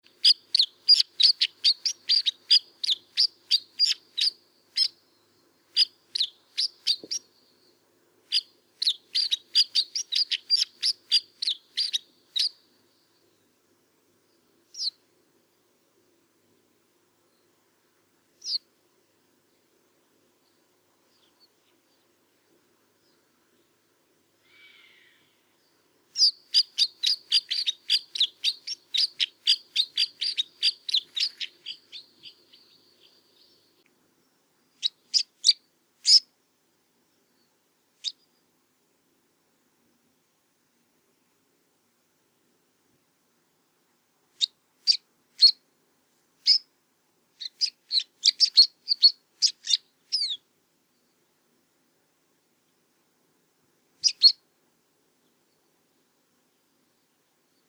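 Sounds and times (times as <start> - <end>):
snowfinch calling: 0.1 - 4.9, 5.8 - 7.3, 8.3 - 12.6, 26.2 - 33.6, 47.4 - 50.4.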